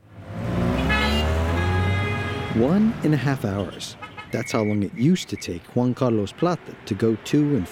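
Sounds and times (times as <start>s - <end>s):
busy traffic engine rumble on streets of La Paz Bolivia: 0.0s - 7.6s
sustained car horns blaring: 0.5s - 4.9s
speech: 2.6s - 7.6s.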